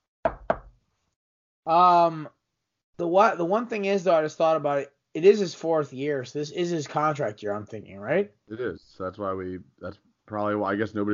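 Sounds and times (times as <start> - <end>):
knocks on wood: 0.3 - 0.8
speech: 1.6 - 2.4, 3.0 - 11.1.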